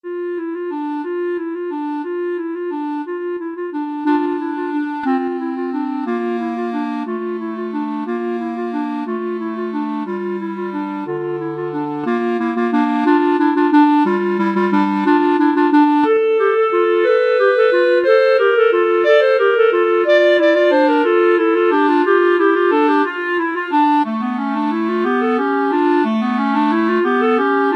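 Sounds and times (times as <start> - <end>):
clarinet duet playing a carol: 0.0 - 27.7.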